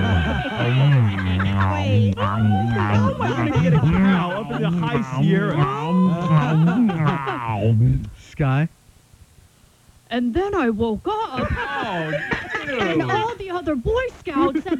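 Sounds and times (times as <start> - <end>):
cow mooing in long low wavering calls: 0.0 - 3.6
laughter: 0.0 - 7.7, 11.4 - 13.5, 14.3 - 14.7
speech: 2.2 - 8.8, 10.1 - 14.7.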